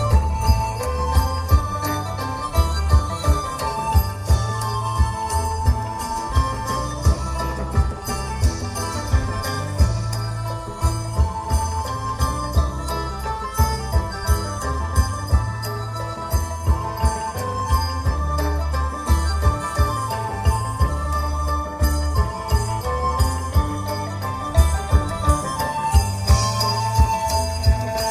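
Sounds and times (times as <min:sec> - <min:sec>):
music in Bangkok Thailand: 0:00.0 - 0:28.0.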